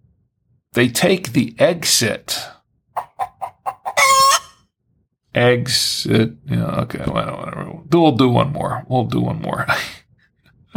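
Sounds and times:
speech: 0.8 - 2.6, 5.3 - 10.0
rooster clucking: 3.0 - 4.6
rooster crowing: 3.7 - 4.6.

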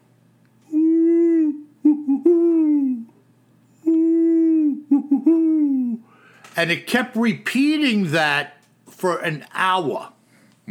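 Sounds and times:
voice imitating great horned owl hooting: 0.6 - 3.2, 3.8 - 6.2
speech: 6.6 - 10.6.

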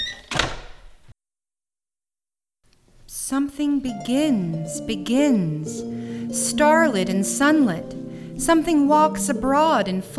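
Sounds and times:
door pushed shut: 0.0 - 1.1
speech: 0.1 - 0.6, 3.3 - 10.1.

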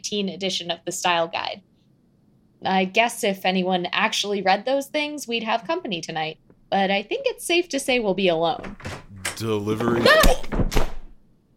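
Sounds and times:
speech: 0.0 - 1.7, 2.6 - 10.8
punch landing with a heavy thud: 10.0 - 11.2.

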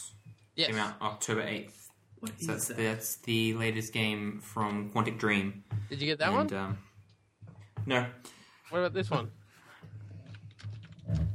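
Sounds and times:
speech: 0.6 - 6.9, 7.9 - 9.4
typing on a computer keyboard: 10.0 - 11.3.

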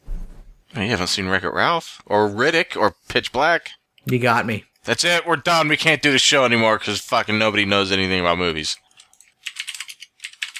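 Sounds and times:
speech: 0.8 - 8.8
typing on a mechanical keyboard: 9.0 - 10.5.

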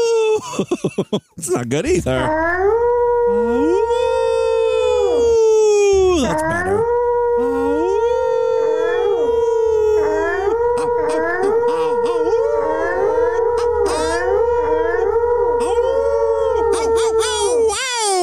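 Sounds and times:
person imitating a wolf howl: 0.0 - 0.4, 2.1 - 18.2
laughter: 0.4 - 2.2
speech: 0.5 - 4.1, 6.2 - 7.0
second howling voice: 3.3 - 15.0, 15.6 - 18.2.

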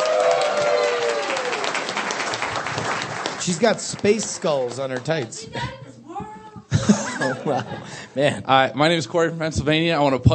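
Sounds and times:
audience applause: 0.0 - 5.3
speech: 3.4 - 5.8, 7.2 - 10.3
laughter: 6.7 - 8.4.

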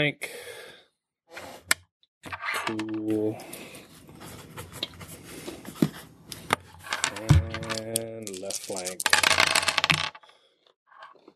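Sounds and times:
speech: 0.0 - 0.6, 2.2 - 3.7
dice rolling on a hard tabletop: 6.8 - 10.2.

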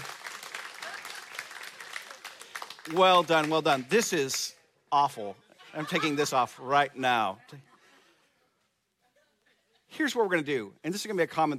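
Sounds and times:
audience applause: 0.0 - 4.0
laughter: 0.8 - 1.5, 5.5 - 6.8
speech: 2.9 - 7.7, 10.0 - 11.5.

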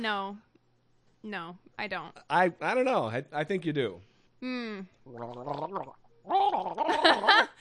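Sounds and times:
speech: 0.0 - 0.5, 1.2 - 7.5
person imitating gargling thick phlegm: 5.0 - 7.3.

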